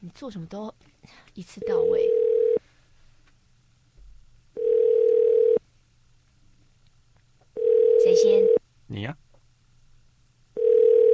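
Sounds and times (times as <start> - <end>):
speech: 0.0 - 2.2
telephone dial tone while a call is being placed: 1.7 - 2.6, 4.6 - 5.6, 7.6 - 8.6, 10.6 - 11.1.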